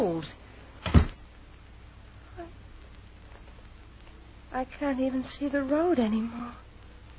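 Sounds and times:
speech: 0.2 - 0.4, 4.6 - 6.6
heavy door being shut: 0.8 - 1.2.

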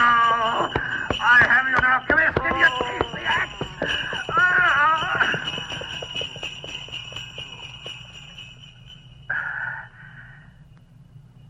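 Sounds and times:
tonal cry: 0.0 - 8.2
horse hoofbeats pulling a sledge: 0.0 - 9.2
sleigh bells jingling: 0.0 - 11.4.

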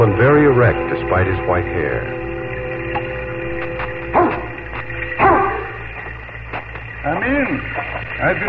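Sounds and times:
speech: 0.0 - 2.3, 7.0 - 8.4
low hum: 0.0 - 8.4
dog barking in a stone house doorway in a forest clearing: 4.1 - 4.6, 5.2 - 5.8.

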